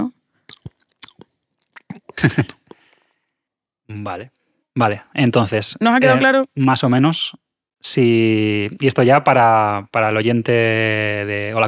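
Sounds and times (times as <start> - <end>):
mouth imitating chewing chalk: 0.5 - 2.8
speech: 2.2 - 2.6, 3.9 - 11.6.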